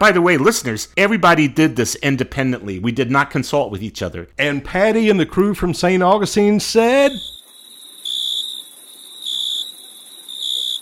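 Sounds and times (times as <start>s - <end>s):
speech: 0.0s - 7.3s
crickets chirping sound effect: 7.0s - 10.8s.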